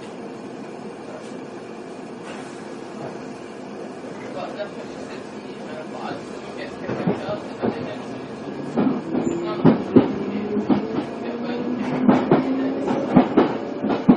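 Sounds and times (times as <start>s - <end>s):
steady rumbling train carriage noise: 4.8s - 14.1s
train wheels clattering over rail joints: 5.7s - 14.1s.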